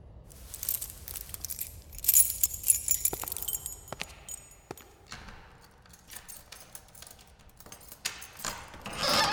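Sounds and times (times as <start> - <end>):
rustling: 0.3 - 4.9
keys jangling and clinking: 0.3 - 9.2.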